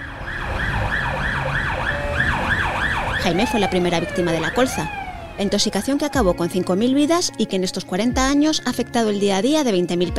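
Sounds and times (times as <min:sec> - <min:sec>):
ambulance siren wailing in rising and falling sweeps: 0:00.0 - 0:06.6
low rumble of road traffic: 0:00.0 - 0:07.3
speech: 0:03.2 - 0:10.1.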